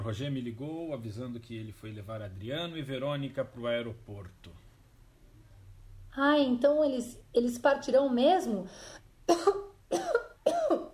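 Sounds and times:
speech: 0.0 - 4.6, 6.1 - 9.7
raspy coughs: 9.3 - 10.9.

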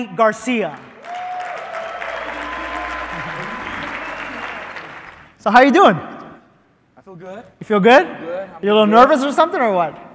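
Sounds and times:
speech: 0.0 - 0.9, 5.4 - 6.1, 7.1 - 10.1
large standing audience applauding a guest: 0.8 - 5.4
faint voices and cheers from the audience: 1.0 - 5.1.

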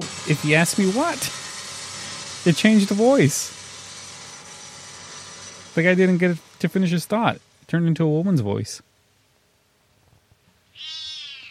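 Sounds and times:
speech: 0.3 - 1.4, 2.4 - 3.6, 5.8 - 8.9
cat meowing: 10.7 - 11.4.

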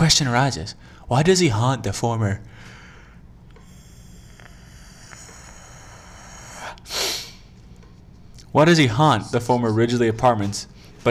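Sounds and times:
speech: 0.1 - 2.8, 8.5 - 11.0
person yawning: 3.6 - 7.4.

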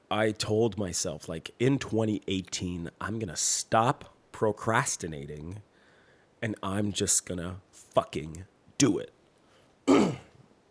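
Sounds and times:
speech: 0.1 - 5.7, 6.4 - 9.2, 9.9 - 10.2
person coughing: 9.9 - 10.4.

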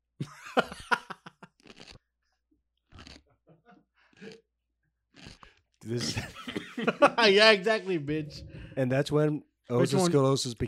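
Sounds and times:
laughter: 0.2 - 1.5, 5.9 - 8.0
speech: 0.6 - 0.8, 5.9 - 6.4, 7.0 - 10.6
chewing crunches: 1.4 - 3.3, 4.1 - 5.8
crunching bite into a pickle: 1.5 - 2.1, 2.9 - 3.2, 5.1 - 5.6.

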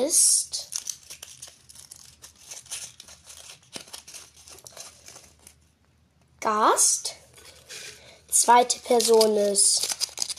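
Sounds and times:
speech: 0.0 - 0.4, 6.4 - 7.2, 8.4 - 9.9
paper rustling and crinkling: 0.6 - 5.8, 7.3 - 8.1, 8.9 - 10.3.

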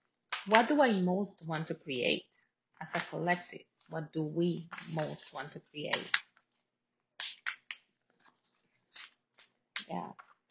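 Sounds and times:
speech: 0.4 - 6.2
deck of cards being shuffled with riffles and slaps: 4.7 - 6.6, 7.2 - 10.4.

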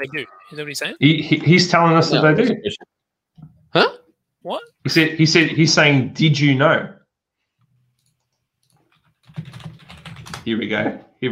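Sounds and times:
speech: 0.0 - 2.9, 3.7 - 7.0, 10.4 - 11.2
typing on a sticking computer keyboard: 7.9 - 10.5.

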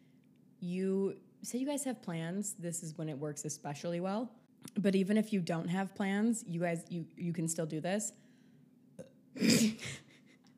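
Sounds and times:
speech: 0.6 - 8.2
person sneezing: 9.4 - 10.1.

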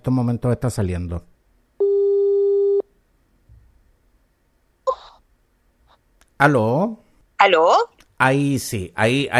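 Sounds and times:
speech: 0.1 - 1.3, 6.4 - 9.3
telephone line tone while redialing a call: 1.8 - 2.9.

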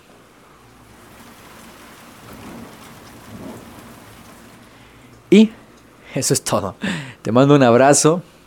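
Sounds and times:
low distant thunder rumbling: 0.0 - 6.4
steady rain falling: 0.0 - 7.2
speech: 5.3 - 8.3.

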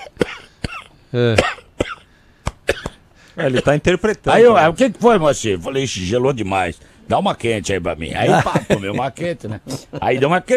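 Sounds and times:
person coughing harshly: 0.0 - 3.8
speech: 1.1 - 1.6, 3.4 - 10.5
laughter: 8.2 - 10.5.

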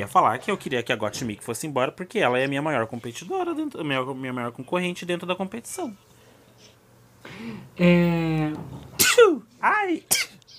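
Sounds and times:
speech: 0.0 - 6.7, 7.4 - 10.3
single sharp sneeze: 9.0 - 9.4, 10.1 - 10.4.

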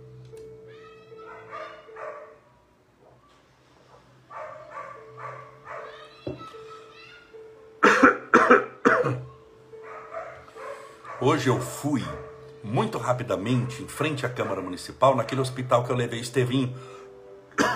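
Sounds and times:
person's loud dry coughs: 7.8 - 9.4, 17.6 - 17.7
speech: 11.2 - 17.0.

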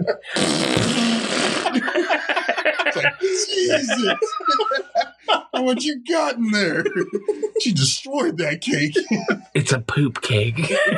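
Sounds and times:
laughter: 0.0 - 0.4, 1.5 - 9.7, 10.4 - 10.9
speech: 0.0 - 2.3, 3.2 - 10.9
loud wet sputtering fart into a cake: 0.4 - 1.8.

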